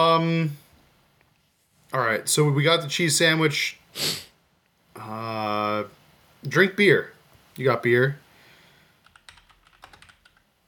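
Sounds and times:
speech: 0.0s - 0.6s, 1.9s - 4.3s, 5.0s - 8.2s
typing on a computer keyboard: 9.0s - 10.5s.

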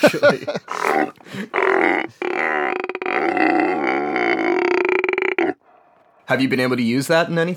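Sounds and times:
laughter: 0.0s - 2.2s
speech: 0.0s - 2.8s, 6.3s - 7.5s
camel groaning and roaring: 0.7s - 6.0s.

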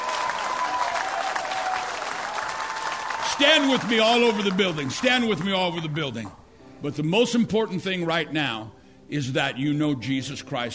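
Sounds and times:
large crowd clapping: 0.0s - 6.3s
speech: 3.4s - 10.7s.

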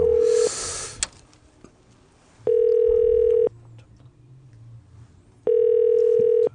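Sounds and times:
telephone ringback tone of an unanswered call: 0.0s - 0.4s, 2.5s - 3.5s, 5.5s - 6.5s
brief hiss: 0.2s - 1.2s.

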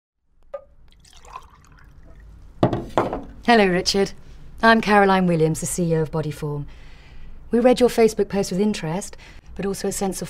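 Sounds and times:
blue liquid poured from a pitcher into a glass: 0.9s - 2.4s
speech: 3.0s - 6.8s, 7.5s - 10.2s.

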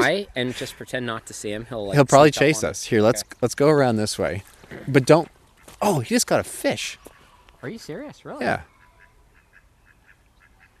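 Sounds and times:
speech: 0.0s - 8.7s
duck quacking: 8.6s - 10.7s.

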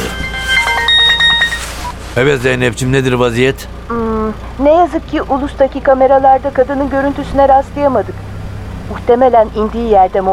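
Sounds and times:
mobile phone ringing with a bright electronic melody inside a car: 0.0s - 2.0s
speech: 2.2s - 8.3s, 8.9s - 10.3s.

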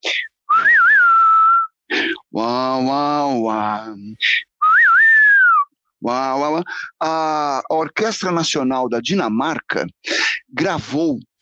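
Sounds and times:
person whistling a twangy spaghetti-western melody: 0.5s - 1.8s, 4.6s - 5.7s
speech: 2.4s - 4.4s, 6.0s - 11.3s.

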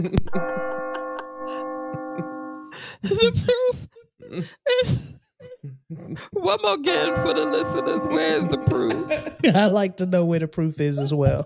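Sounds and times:
speech: 0.0s - 0.8s, 3.0s - 11.4s
laughter: 0.0s - 2.5s, 6.0s - 9.8s, 10.9s - 11.4s
bell struck once and ringing: 0.3s - 2.8s, 6.9s - 9.5s.

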